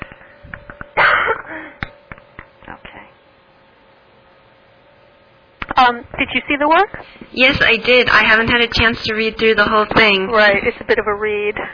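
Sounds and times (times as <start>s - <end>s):
breathy sounds: 0.0s - 2.0s
throat clearing through a covered mouthpiece: 1.0s - 1.8s
speech: 5.8s - 11.7s.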